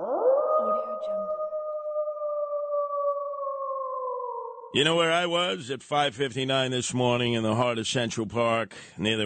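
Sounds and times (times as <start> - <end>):
wolf howling: 0.0 - 4.8
speech: 4.7 - 9.2.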